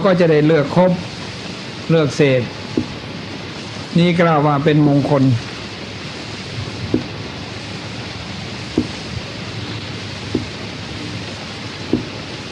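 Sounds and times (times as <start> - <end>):
speech: 0.0 - 1.1, 1.9 - 2.6, 3.9 - 5.5
steady falling rain: 0.0 - 12.4
soft drip-like taps: 2.8 - 3.0, 6.9 - 7.1, 8.8 - 9.0, 10.3 - 10.6, 11.9 - 12.2.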